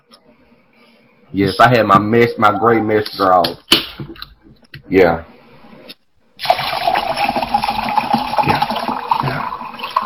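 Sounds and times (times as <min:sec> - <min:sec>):
speech: 0:01.3 - 0:03.7, 0:04.9 - 0:05.3
drink pouring into a glass: 0:06.4 - 0:10.0.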